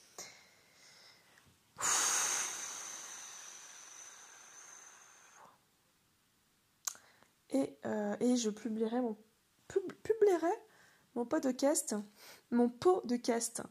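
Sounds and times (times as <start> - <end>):
woman taking a long deep breath to calm down: 0.2 - 5.6, 10.7 - 11.1, 12.1 - 12.5
speech: 7.5 - 10.6, 11.2 - 13.6.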